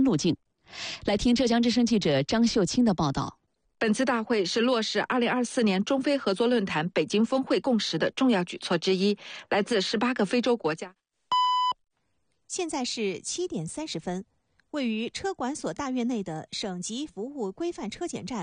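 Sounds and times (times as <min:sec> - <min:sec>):
speech: 0:00.0 - 0:11.0, 0:12.5 - 0:18.4
radio time-signal electronic beep: 0:11.3 - 0:11.8.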